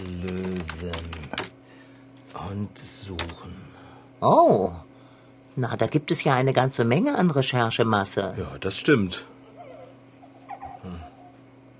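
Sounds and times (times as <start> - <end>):
low steady hum: 0.0 - 11.7
speech: 0.2 - 1.4, 2.3 - 4.9, 5.6 - 9.3
dog whimpering in high plaintive whines: 9.3 - 11.5.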